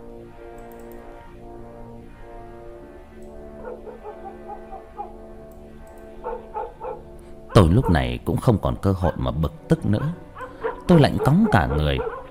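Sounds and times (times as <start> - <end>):
droning background with sliding tones: 0.0 - 12.3
dogs barking and yelping from a house across the way: 3.5 - 5.2, 6.0 - 8.0, 9.9 - 12.3
speech: 7.6 - 10.3, 10.9 - 12.1.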